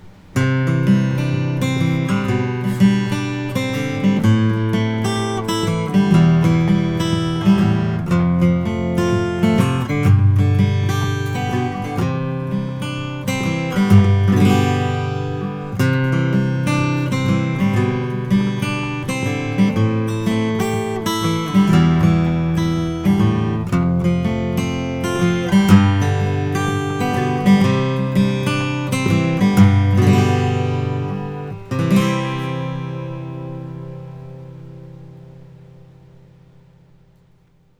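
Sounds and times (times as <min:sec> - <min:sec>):
1937 Martin 000-18 acoustic guitar: 0:00.0 - 0:37.7.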